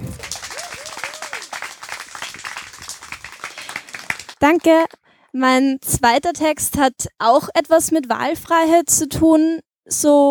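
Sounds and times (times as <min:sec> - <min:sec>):
person whooping in audience: 0:00.0 - 0:01.5
audience applauding for performer: 0:00.0 - 0:04.7
speech: 0:04.4 - 0:10.3.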